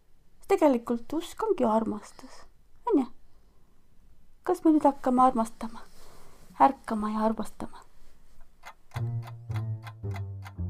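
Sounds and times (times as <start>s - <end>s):
speech: 0.5s - 3.1s, 4.5s - 5.9s, 6.6s - 7.9s, 9.0s - 9.4s
clock ticking: 8.6s - 10.6s.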